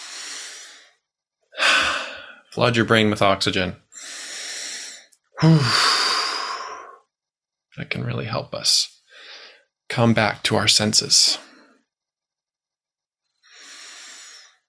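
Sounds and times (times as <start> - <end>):
deep breathing: 0.0 - 2.6, 3.8 - 7.2, 9.1 - 9.8, 13.2 - 14.6
speech: 2.6 - 3.8, 5.4 - 5.9, 7.8 - 8.9, 10.0 - 11.5.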